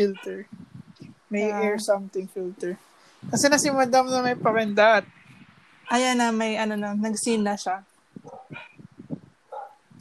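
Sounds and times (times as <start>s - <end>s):
speech: 0.0s - 0.6s, 1.3s - 5.2s, 5.9s - 8.7s
dog barking from another room: 8.2s - 8.8s, 9.5s - 9.8s.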